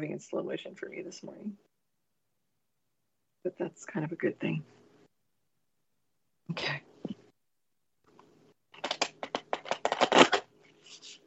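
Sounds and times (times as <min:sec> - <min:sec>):
speech: 0:00.0 - 0:01.7, 0:03.4 - 0:04.8, 0:06.5 - 0:06.9
deck of cards being shuffled during a card reading: 0:08.8 - 0:11.2.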